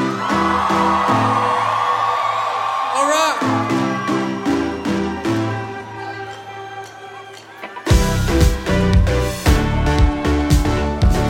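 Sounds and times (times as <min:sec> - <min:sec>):
audience screaming and whooping: 0:00.0 - 0:11.2.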